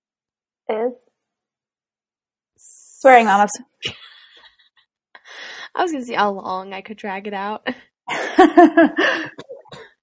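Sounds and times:
speech: 0:03.0 - 0:04.0, 0:05.8 - 0:09.4
person coughing with sharp voiced and rasping coughs: 0:09.0 - 0:10.0.

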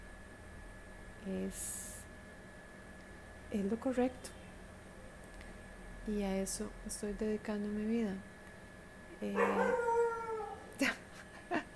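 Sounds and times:
speech: 0:01.2 - 0:01.8, 0:03.5 - 0:04.4, 0:06.0 - 0:08.3, 0:09.2 - 0:09.8, 0:10.8 - 0:11.0
dogs howling: 0:09.2 - 0:10.7.

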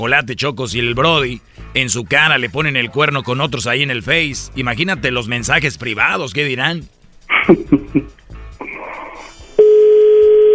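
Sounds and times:
speech: 0:00.0 - 0:08.2
laughter: 0:07.3 - 0:08.1
long steady voicemail tone: 0:09.6 - 0:10.5.

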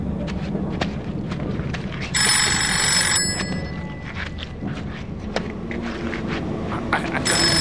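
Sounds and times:
scattered footstep-like thuds: 0:00.1 - 0:02.1, 0:03.3 - 0:06.9
telephone bell ringing loudly: 0:02.2 - 0:04.5, 0:07.2 - 0:07.6.

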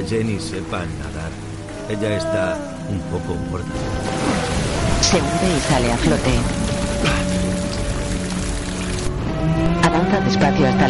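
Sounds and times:
speech: 0:00.0 - 0:07.2, 0:09.4 - 0:10.8
heavy rain falling: 0:00.0 - 0:09.4.

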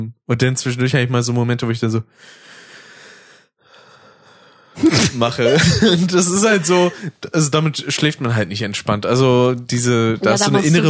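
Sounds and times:
speech: 0:00.0 - 0:02.6, 0:04.8 - 0:10.8
person imitating a deep gasping breath after shallow breathing: 0:02.1 - 0:04.9, 0:06.8 - 0:07.2
forceful breathy exhale: 0:02.2 - 0:04.8
laughter: 0:04.9 - 0:07.2.

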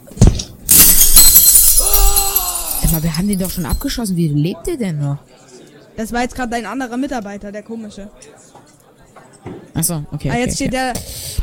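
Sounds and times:
video game window glass shattering as a character jumps out: 0:00.7 - 0:04.0
speech: 0:02.9 - 0:05.4, 0:06.0 - 0:08.4, 0:09.4 - 0:11.4.

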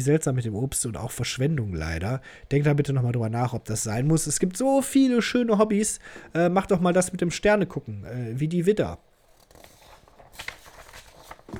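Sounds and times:
speech: 0:00.0 - 0:09.1
paper page being turned: 0:09.2 - 0:11.5.

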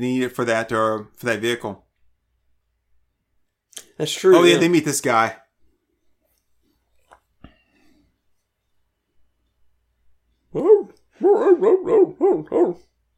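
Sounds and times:
speech: 0:00.0 - 0:01.9, 0:04.0 - 0:05.4, 0:10.6 - 0:12.9
wild dogs barking: 0:10.6 - 0:12.9.

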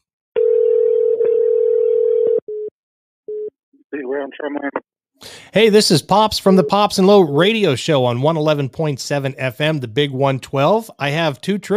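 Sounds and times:
telephone line tone as a radio caller is put through: 0:00.4 - 0:02.7
speech: 0:04.1 - 0:11.7.

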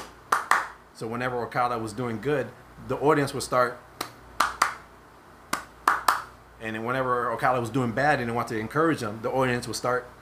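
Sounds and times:
audience hand clap pattern in Japan: 0:00.0 - 0:00.8, 0:04.0 - 0:04.9, 0:05.5 - 0:06.4
speech: 0:01.0 - 0:03.9, 0:06.6 - 0:10.2.

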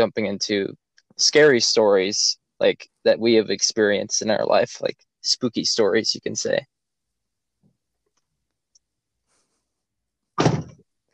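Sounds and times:
speech: 0:00.0 - 0:06.7
heavy door slamming shut: 0:10.4 - 0:10.8.

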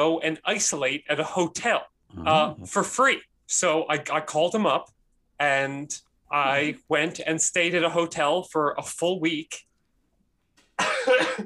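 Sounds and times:
speech: 0:00.0 - 0:09.7, 0:10.8 - 0:11.4
harsh raspy cough: 0:10.8 - 0:11.4.

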